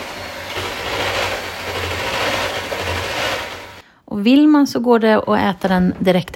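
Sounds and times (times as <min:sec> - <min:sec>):
electric mixer whisking a cream mixture: 0:00.0 - 0:03.8
speech: 0:04.2 - 0:06.3.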